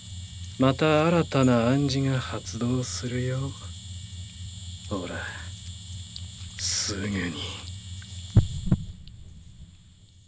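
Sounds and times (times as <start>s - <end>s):
steady hum: 0.0s - 10.2s
speech: 0.6s - 3.7s, 4.9s - 5.4s, 6.9s - 7.6s
heartbeat thumps: 8.3s - 9.8s.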